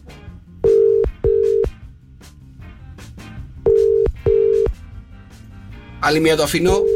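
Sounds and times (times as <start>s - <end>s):
faint low music: 0.4s - 6.9s
double-burst ringback tones of an unanswered outgoing call: 0.6s - 1.8s, 3.7s - 4.8s, 6.7s - 6.9s
speech: 6.0s - 6.9s.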